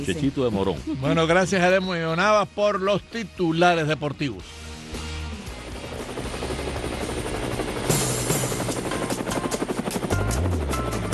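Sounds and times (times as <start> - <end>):
speech: 0.0 - 4.7
helicopter rotor thumping: 5.7 - 11.1.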